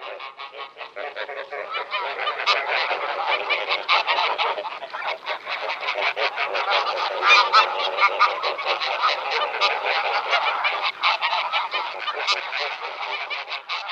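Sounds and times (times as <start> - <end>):
greylag geese honking in a chorus: 0.0 - 13.9.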